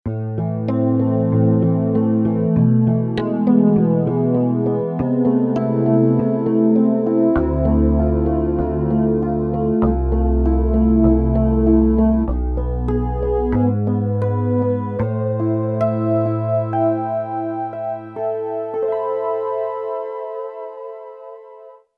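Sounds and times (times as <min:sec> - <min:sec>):
Roland JV-880 synthesizer guitar Rhodes factory patch: 0:00.1 - 0:21.8.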